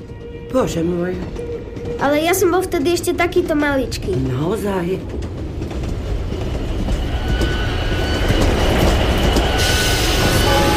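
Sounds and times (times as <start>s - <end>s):
express train wheels rumbling on rails arriving at a station platform: 0.0s - 10.7s
speech: 0.5s - 5.3s.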